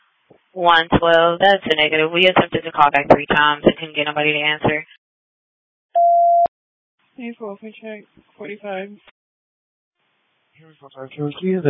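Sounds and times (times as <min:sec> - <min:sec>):
speech: 0:00.6 - 0:05.0, 0:07.2 - 0:09.2, 0:10.6 - 0:11.6
loud electronic beep on radio channel: 0:06.0 - 0:06.5.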